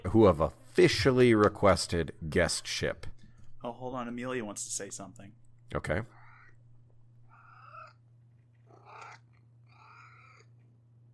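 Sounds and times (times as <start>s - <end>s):
speech: 0.1s - 3.1s, 3.8s - 6.2s
cat trilling: 7.3s - 8.0s, 8.6s - 10.6s.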